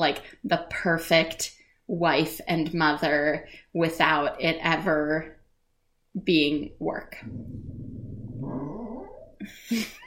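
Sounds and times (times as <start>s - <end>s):
speech: 0.0s - 5.4s, 6.2s - 7.8s, 9.4s - 10.0s
dog groaning whine: 7.2s - 9.4s.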